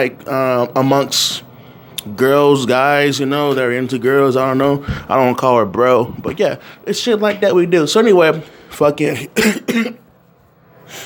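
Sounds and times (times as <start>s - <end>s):
speech: 0.0s - 10.0s
harsh throaty coughs: 9.4s - 10.1s.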